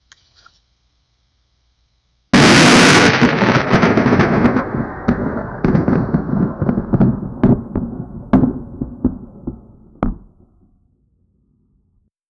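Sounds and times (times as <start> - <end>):
meteor crashing into earth: 2.4 - 10.6.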